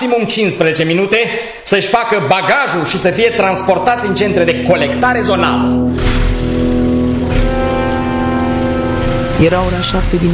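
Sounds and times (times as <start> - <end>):
speech: 0.0 - 6.1, 9.4 - 10.3
heavy truck engine droning as it pulls up: 6.0 - 10.3.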